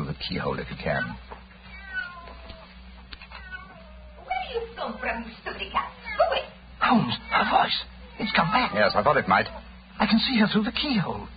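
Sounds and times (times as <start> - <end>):
low hum: 0.0 - 11.3
speech: 0.2 - 1.4, 4.5 - 11.3
cat meowing: 0.9 - 4.6, 5.7 - 9.7.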